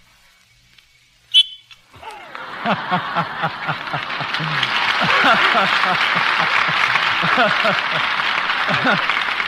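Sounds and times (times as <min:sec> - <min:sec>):
shrill blast from a special whistle: 0:01.3 - 0:01.7
studio audience laughter: 0:02.0 - 0:09.4
speech: 0:02.6 - 0:09.2.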